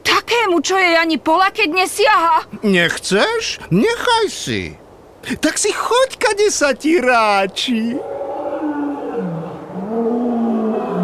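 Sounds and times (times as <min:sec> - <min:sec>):
speech: 0:00.4 - 0:08.2
lions roaring: 0:08.0 - 0:11.0.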